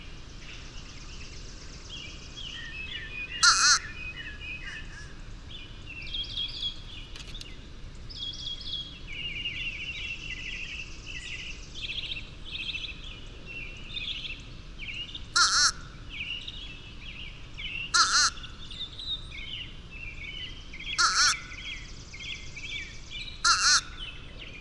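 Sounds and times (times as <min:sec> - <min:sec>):
steady background noise: 0:00.0 - 0:24.6
loud harsh bird calls: 0:02.8 - 0:05.2, 0:15.2 - 0:16.6, 0:17.4 - 0:19.3, 0:20.7 - 0:24.6
bird warbling: 0:03.3 - 0:04.0, 0:15.3 - 0:16.0, 0:17.8 - 0:18.8, 0:20.8 - 0:21.9, 0:23.4 - 0:24.1.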